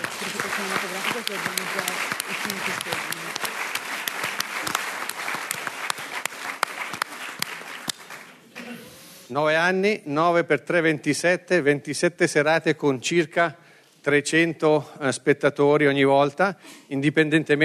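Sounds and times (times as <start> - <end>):
audience applause at an evening festival event: 0.0 - 8.5
speech: 9.3 - 17.6.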